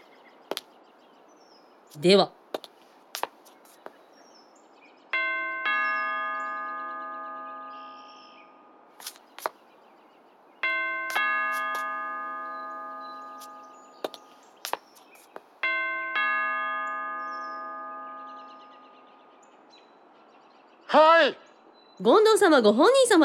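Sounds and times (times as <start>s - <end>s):
speech: 1.9s - 2.4s, 22.0s - 23.2s
doorbell chiming with bright harmonic tones: 5.2s - 8.4s, 10.6s - 14.0s, 15.6s - 19.0s.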